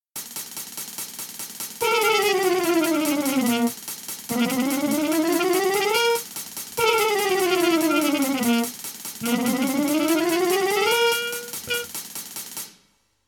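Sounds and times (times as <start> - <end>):
mechanical chromatic tones in mono: 1.8 - 6.2, 6.8 - 11.9.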